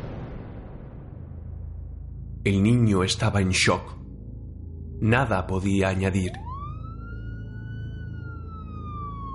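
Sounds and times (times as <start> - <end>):
speech: 2.5 - 4.0, 5.0 - 6.5
distant police siren: 3.0 - 9.3.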